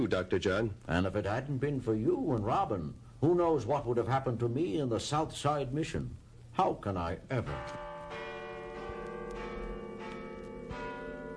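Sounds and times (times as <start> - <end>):
speech: 0.0 - 7.9
church bells pealing: 7.4 - 11.3.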